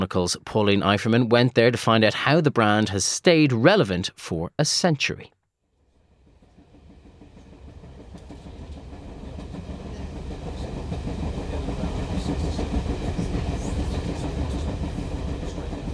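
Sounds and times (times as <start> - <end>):
speech: 0.0 - 5.4
train rumbling on rails with rhythmic clatter: 6.0 - 15.9.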